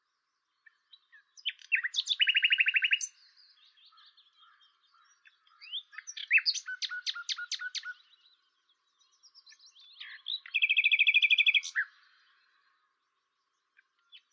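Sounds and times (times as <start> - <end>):
Luscinia megarhynchos common nightingale song: 0.0 - 14.3.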